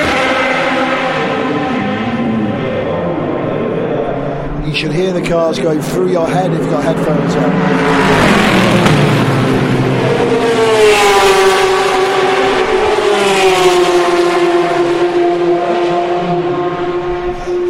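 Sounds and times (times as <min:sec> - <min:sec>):
race car engines droning at Le Mans at midnight: 0:00.0 - 0:17.6
speech: 0:04.7 - 0:09.3.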